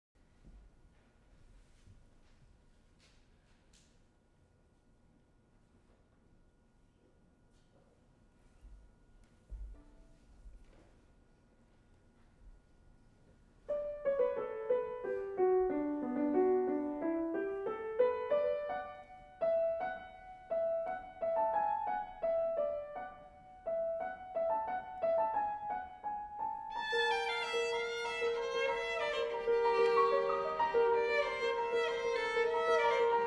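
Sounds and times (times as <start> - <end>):
violin and piano sonata: 13.8 - 33.2.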